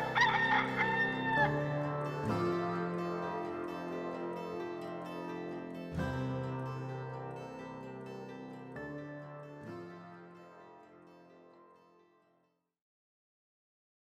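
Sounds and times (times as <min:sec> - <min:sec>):
rooster crowing: 0:00.0 - 0:01.7
sustained humming tonal backdrop: 0:00.0 - 0:10.4.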